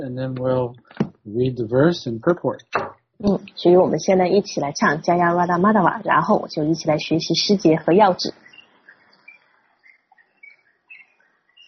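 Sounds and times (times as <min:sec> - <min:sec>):
speech: 0:00.0 - 0:08.4
soft background hiss: 0:00.0 - 0:11.6
several small birds chirping and trilling: 0:07.4 - 0:11.6.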